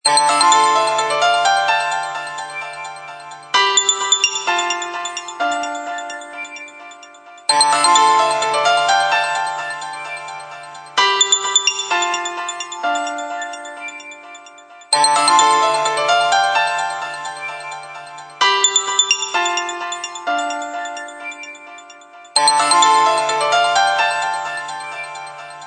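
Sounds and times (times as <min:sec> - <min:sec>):
HTC Freestyle phone ringtone: 0:00.0 - 0:25.6.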